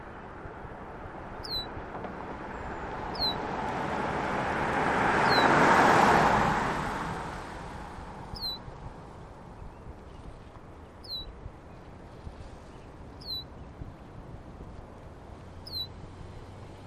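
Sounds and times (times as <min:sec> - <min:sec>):
car passing on a road in Yosemite Valley: 0:00.2 - 0:09.7, 0:11.9 - 0:16.8
birds singing in spring in Yosemite Valley: 0:01.4 - 0:01.7, 0:02.5 - 0:03.4, 0:05.2 - 0:05.6, 0:08.3 - 0:08.6, 0:09.5 - 0:11.9, 0:12.6 - 0:13.8, 0:15.6 - 0:16.0.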